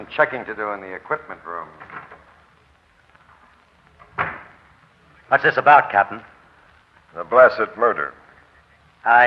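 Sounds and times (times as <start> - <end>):
speech: 0.0 - 1.9, 5.3 - 6.3, 7.1 - 8.2, 9.0 - 9.2
back door opening and shutting: 1.7 - 2.6, 3.3 - 4.7
back door thud: 1.8 - 2.4, 4.0 - 4.6.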